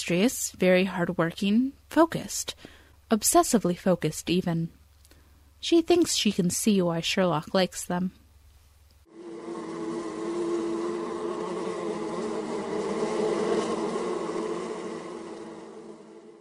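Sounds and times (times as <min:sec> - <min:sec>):
speech: 0:00.0 - 0:04.8, 0:05.6 - 0:08.2
many bees buzzing in a city: 0:09.1 - 0:16.3.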